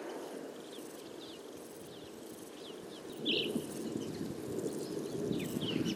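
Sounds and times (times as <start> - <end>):
grasshoppers chirping in a field: 0.0 - 5.9.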